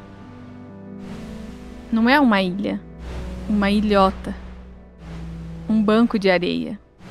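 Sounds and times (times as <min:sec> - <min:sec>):
waves breaking over a coral reef: 0:01.0 - 0:02.2, 0:03.0 - 0:07.0
speech: 0:01.9 - 0:02.9, 0:03.5 - 0:04.4, 0:05.7 - 0:06.8.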